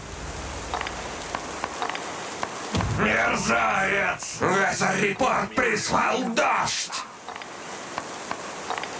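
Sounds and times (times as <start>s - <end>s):
rain pattering on a hard surface: 0.0s - 6.1s, 6.9s - 8.9s
sharp rain drips and taps: 0.7s - 2.9s, 7.2s - 8.9s
speech: 3.0s - 7.1s.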